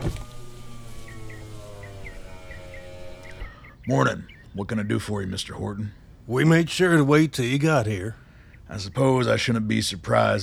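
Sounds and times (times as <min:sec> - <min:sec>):
armored vehicle window lowering with motor whir: 0:00.0 - 0:03.8
bird chirps: 0:00.4 - 0:05.3
speech: 0:03.9 - 0:10.4.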